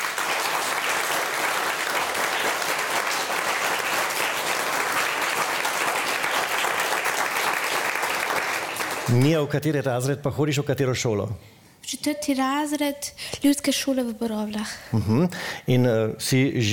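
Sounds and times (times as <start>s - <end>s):
audience applause for a competition prize winner: 0.0s - 9.3s
speech: 9.1s - 16.7s.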